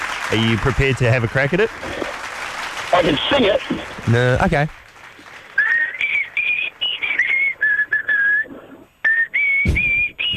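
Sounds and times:
speech: 0.3 - 2.2, 3.0 - 4.8
person whistling a slow steady melody: 5.6 - 8.5, 9.1 - 10.3.

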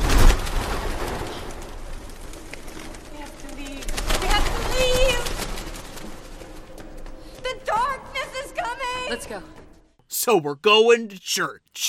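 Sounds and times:
flock of birds flapping wings bursting up out of a shaft into flight: 0.0 - 7.6
speech: 10.3 - 11.8.

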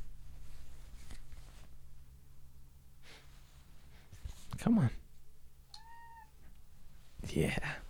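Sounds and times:
low hum: 0.0 - 7.8
speech: 4.6 - 5.0, 7.4 - 7.7
cat meowing: 5.7 - 6.4.

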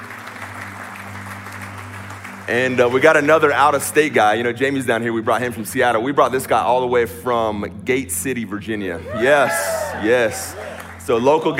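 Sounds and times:
audience clapping: 0.0 - 4.4, 9.5 - 11.5
speech: 2.5 - 11.5.

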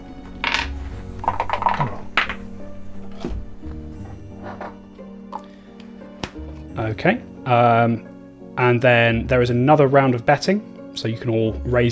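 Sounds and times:
dice rattling across a hard surface in a betting dice game: 0.4 - 3.4
speech: 6.9 - 11.8.

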